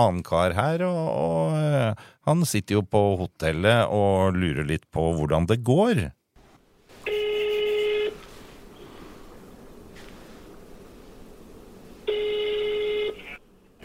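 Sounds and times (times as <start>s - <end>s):
speech: 0.0s - 6.2s
faint telephone line hiss: 6.4s - 13.8s
telephone ringback tone through an earpiece: 12.1s - 13.2s.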